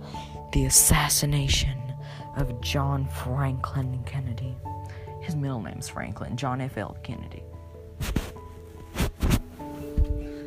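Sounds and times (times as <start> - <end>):
speech: 0.6 - 1.8, 2.4 - 8.2
cat rustling and shuffling while moving about a room: 8.0 - 10.3.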